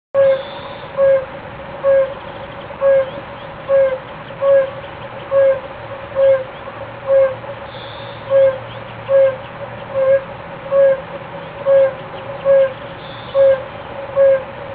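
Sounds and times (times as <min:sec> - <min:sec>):
fire-bellied toad calls: 0:00.2 - 0:14.5.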